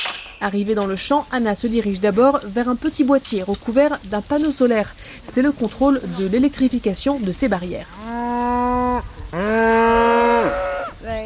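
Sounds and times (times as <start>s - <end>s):
faint outdoor background: 0.0s - 11.2s
speech: 0.4s - 8.3s
Shetland cows mooing in a pasture field: 8.0s - 11.2s.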